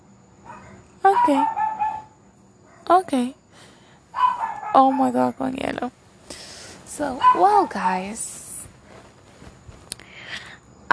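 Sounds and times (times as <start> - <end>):
dogs barking: 0.4 - 2.9, 4.1 - 5.4, 7.2 - 7.9
speech: 1.2 - 1.6, 2.9 - 3.4, 4.7 - 6.0, 7.0 - 8.3.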